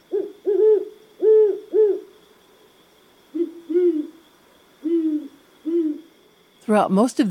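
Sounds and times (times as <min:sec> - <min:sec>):
great horned owl hooting: 0:00.0 - 0:02.3, 0:03.2 - 0:06.2
speech: 0:06.7 - 0:07.2.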